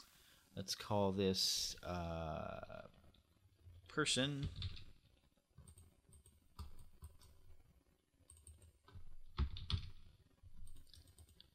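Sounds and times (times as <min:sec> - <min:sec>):
speech: 0:00.6 - 0:03.0, 0:04.0 - 0:04.8
typing on a computer keyboard: 0:04.4 - 0:04.9, 0:05.6 - 0:07.4, 0:08.2 - 0:11.5.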